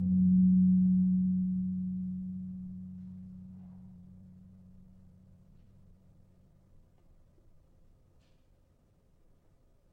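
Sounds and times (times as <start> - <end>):
gamelan-tuned gong in G: 0.0 - 6.5.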